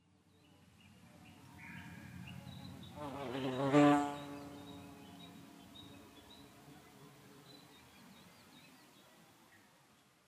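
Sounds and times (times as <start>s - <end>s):
bee buzzing: 2.9s - 5.3s.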